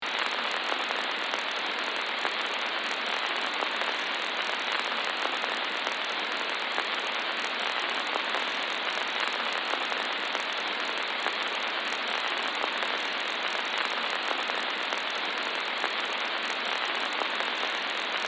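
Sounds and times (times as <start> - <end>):
vintage film crackle: 0.0 - 18.2.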